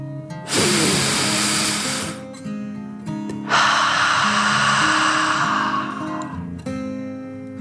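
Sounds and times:
deep forceful breathing in imitation of a dragon: 0:00.5 - 0:02.2, 0:03.4 - 0:06.6
steady sustained tones: 0:03.5 - 0:06.5.

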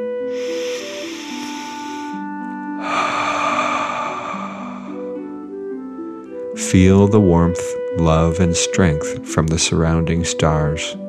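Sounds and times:
soft sustained music: 0:00.0 - 0:11.0
deep belly breath in and out during a guided relaxation: 0:00.1 - 0:05.8
speech: 0:06.7 - 0:11.0.

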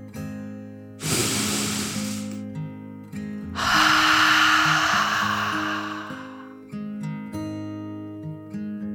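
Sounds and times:
deep slow breath in and out: 0:01.0 - 0:02.4, 0:03.6 - 0:06.7.

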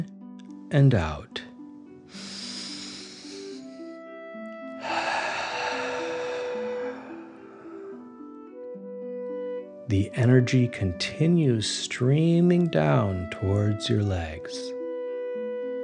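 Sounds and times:
soft steady music: 0:00.0 - 0:15.8
speech: 0:00.7 - 0:01.4, 0:09.9 - 0:14.8
forceful exhale through mouth: 0:02.1 - 0:03.7, 0:04.8 - 0:08.0
deep inhale through nose: 0:02.1 - 0:03.9, 0:04.8 - 0:08.2.

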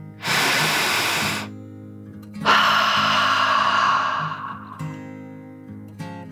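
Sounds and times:
deep dragon breath in and out: 0:00.0 - 0:01.5, 0:02.4 - 0:05.4
steady low tones: 0:02.4 - 0:05.3.

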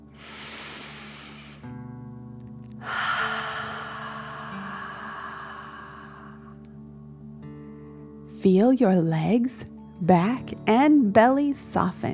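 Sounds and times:
deep breath in and out during a relaxation exercise: 0:00.0 - 0:01.8, 0:02.8 - 0:06.6
faint steady tonal background: 0:00.0 - 0:12.1
speech: 0:08.4 - 0:12.1.

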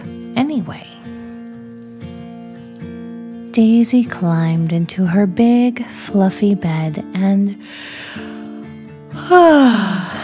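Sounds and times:
speech: 0:00.6 - 0:01.1, 0:03.6 - 0:08.0, 0:09.3 - 0:10.1
voice imitating a yawn: 0:09.2 - 0:10.2.

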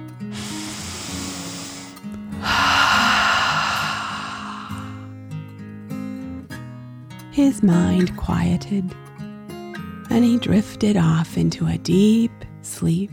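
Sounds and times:
deep breath in and out: 0:00.3 - 0:05.1
speech: 0:07.4 - 0:09.0, 0:10.1 - 0:13.1.

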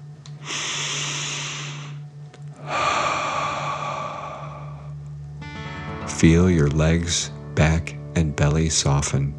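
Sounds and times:
deep inhale through nose: 0:00.4 - 0:02.0, 0:02.6 - 0:05.0
forceful exhale out through mouth: 0:00.4 - 0:02.0, 0:02.6 - 0:05.0
speech: 0:06.2 - 0:09.3.

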